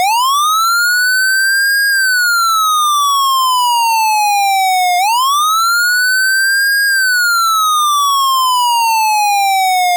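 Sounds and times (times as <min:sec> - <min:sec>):
wailing siren: 0:00.0 - 0:09.9.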